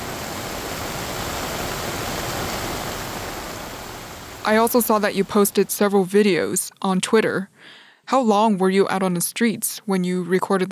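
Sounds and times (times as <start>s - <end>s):
rushing floodwater in the streets of Hung Hum, Hong Kong: 0.0s - 5.7s
heavy rain in the streets of Hung Hum, Hong Kong: 0.0s - 5.8s
speech: 4.4s - 10.7s.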